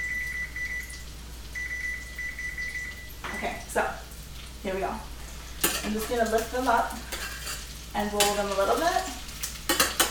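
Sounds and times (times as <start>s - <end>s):
kitchen timer beeping: 0.0s - 1.0s, 1.6s - 3.6s
speech: 3.4s - 5.1s, 5.8s - 7.2s, 7.9s - 9.2s.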